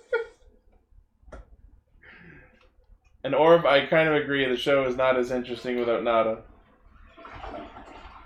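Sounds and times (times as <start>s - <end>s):
speech: 3.2s - 6.5s
toilet flushing: 3.6s - 8.2s.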